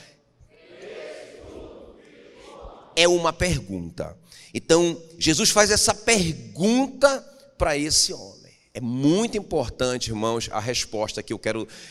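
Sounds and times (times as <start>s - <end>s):
crowd of masked people shouting a phrase in unison: 0.5s - 3.0s
speech: 3.0s - 11.9s.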